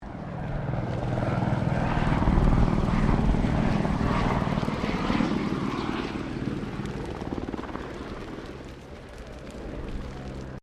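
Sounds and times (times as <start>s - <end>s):
Bell 204 firefighting helicopter passing distant: 0.0s - 10.6s.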